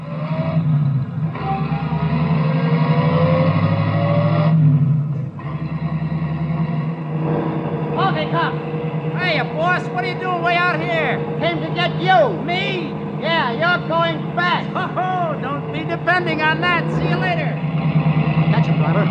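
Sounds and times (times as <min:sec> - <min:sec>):
taxi cab engine rumbling and revving while accelerating: 0:00.0 - 0:19.0
speech: 0:16.1 - 0:17.4.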